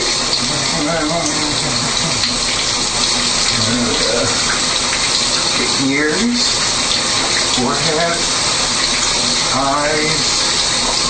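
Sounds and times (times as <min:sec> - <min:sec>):
shower water running: 0:00.0 - 0:11.0
speech: 0:00.9 - 0:02.2, 0:05.7 - 0:06.6, 0:07.6 - 0:08.4, 0:09.6 - 0:10.4.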